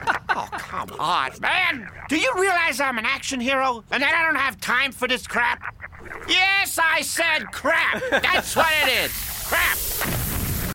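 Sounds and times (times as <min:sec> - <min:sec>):
laughter: 0:00.0 - 0:01.0, 0:07.4 - 0:09.8
speech: 0:00.8 - 0:09.8
cartoon crackling burst of phones materializing with rumbling low end: 0:08.2 - 0:10.7.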